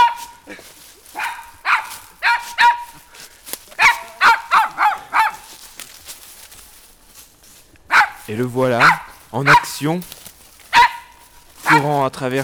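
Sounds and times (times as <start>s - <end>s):
stray dog barking: 0.0s - 0.5s, 1.1s - 5.7s, 7.9s - 11.9s
speech: 8.3s - 10.2s, 11.8s - 12.4s.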